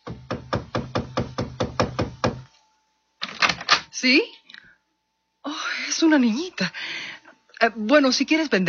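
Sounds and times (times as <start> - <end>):
firm knocks on the wooden front door of a house: 0.0 - 2.4
speech: 4.0 - 4.4, 5.4 - 8.6.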